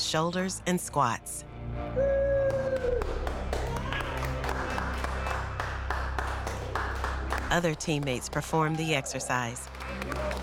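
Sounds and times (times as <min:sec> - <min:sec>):
speech: 0:00.1 - 0:02.2, 0:07.5 - 0:10.4
person whooping or cheering: 0:02.0 - 0:04.2
small group of teammates clapping in a reverberant room: 0:02.4 - 0:10.4.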